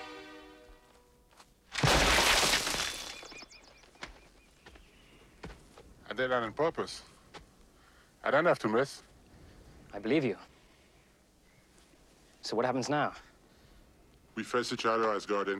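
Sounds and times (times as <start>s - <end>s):
rock smashing against a boulder on a rocky slope: 1.7s - 3.6s
debris clattering: 1.7s - 3.7s
speech: 6.2s - 7.1s, 8.3s - 9.1s, 9.9s - 10.5s, 12.5s - 13.3s, 14.4s - 15.5s.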